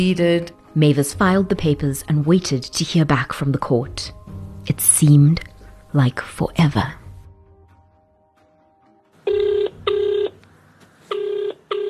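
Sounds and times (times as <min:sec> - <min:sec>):
speech: 0:00.0 - 0:07.0
telephone ringing in short electronic buzzing tone bursts: 0:09.2 - 0:10.4, 0:11.1 - 0:11.8.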